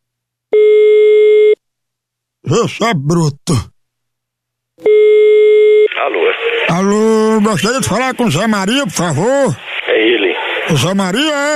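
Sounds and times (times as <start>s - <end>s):
telephone ringing tone as a call is placed: 0.6s - 1.6s, 4.8s - 6.0s
speech: 2.5s - 3.7s, 6.0s - 11.5s.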